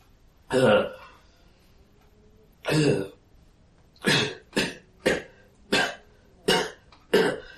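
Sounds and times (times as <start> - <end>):
person imitating harsh coughing: 2.6 - 3.2, 4.0 - 7.5.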